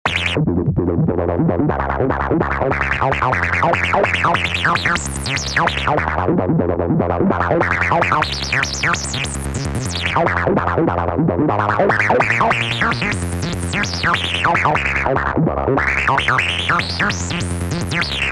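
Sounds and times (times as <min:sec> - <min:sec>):
acid goa trance bass: 0:00.0 - 0:18.2.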